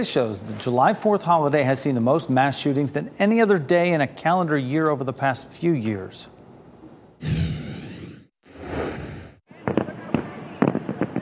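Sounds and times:
speech: 0.0s - 6.4s, 7.2s - 7.5s
fireworks whooshing and popping: 7.2s - 9.9s.

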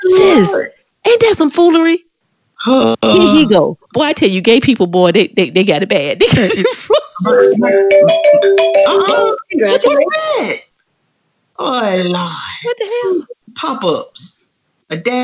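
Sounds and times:
speech: 0.4s - 10.7s, 11.6s - 15.2s
computer pop-up ad chime: 7.3s - 10.1s.

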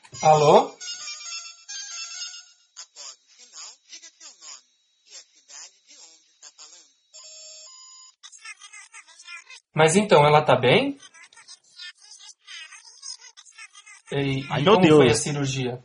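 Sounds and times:
mobile phone ringtone for an incoming call: 0.1s - 8.7s
speech: 0.2s - 0.8s, 9.8s - 11.0s, 14.1s - 15.8s.

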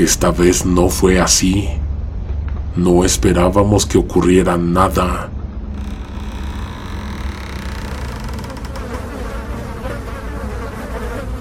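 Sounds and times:
speech: 0.0s - 1.8s, 2.8s - 5.4s
swarm of flies buzzing: 8.6s - 11.3s.

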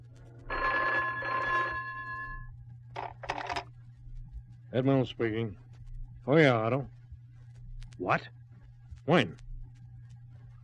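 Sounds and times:
low steady hum: 0.0s - 10.6s
old-fashioned telephone bell ringing: 0.5s - 2.4s
speech: 4.7s - 5.6s, 6.3s - 7.0s, 8.0s - 8.4s, 9.1s - 9.4s.

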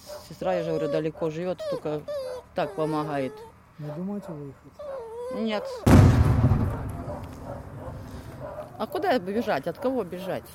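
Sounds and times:
speech: 0.4s - 6.3s, 8.8s - 10.5s
gunshot: 5.9s - 7.5s
long low rumble of gunshot: 5.9s - 8.6s.

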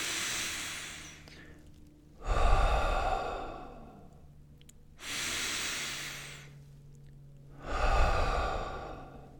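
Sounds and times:
slow deep human breathing: 0.0s - 4.3s, 5.0s - 6.6s, 7.5s - 9.3s.

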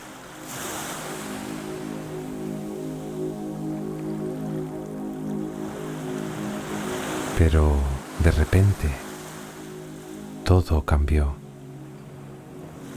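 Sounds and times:
ocean waves washing around a fishing boat on calm sea: 0.0s - 12.9s
speech: 7.4s - 9.0s, 10.5s - 11.4s.

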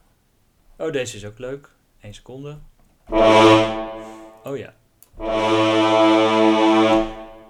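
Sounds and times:
speech: 0.8s - 3.7s, 4.4s - 7.0s
deep brass-like action movie trailer blast: 3.1s - 4.4s, 5.2s - 7.4s.

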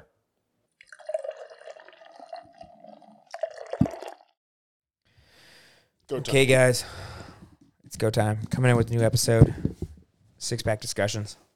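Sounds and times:
beer being poured: 0.8s - 4.4s
speech: 6.1s - 7.0s, 8.0s - 9.7s, 10.4s - 11.5s.

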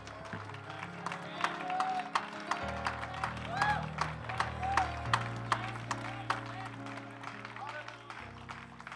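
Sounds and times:
voices shouting and cheering: 0.0s - 8.2s
large audience clapping: 0.0s - 8.9s.

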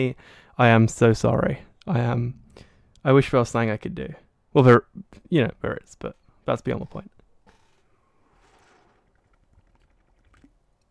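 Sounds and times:
speech: 0.0s - 7.2s
person sipping water: 7.6s - 10.9s.

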